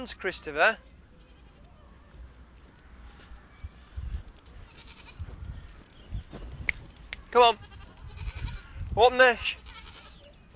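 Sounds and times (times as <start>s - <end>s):
speech: 0.0s - 1.0s, 7.3s - 7.8s, 9.0s - 9.6s
wind or handling noise: 0.0s - 10.5s
goat bleating: 1.2s - 1.7s, 4.6s - 5.3s, 7.4s - 8.8s, 9.4s - 10.3s.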